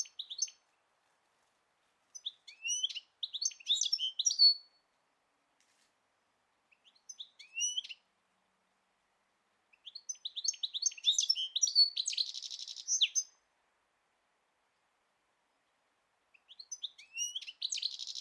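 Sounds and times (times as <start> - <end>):
bird chirping in high sharp twittering notes: 2.2 - 4.7, 6.7 - 8.0, 9.8 - 13.3, 16.4 - 18.2.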